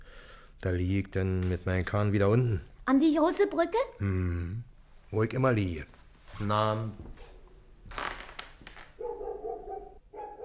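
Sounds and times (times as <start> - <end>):
speech: 0.6 - 7.3
dog barking: 9.0 - 10.4.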